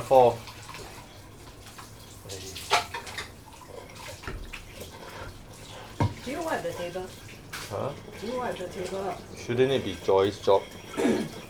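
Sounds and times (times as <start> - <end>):
speech: 0.0 - 0.5, 6.3 - 11.4
dirty water sloshing in a small pail as things are rinsed: 0.0 - 11.4.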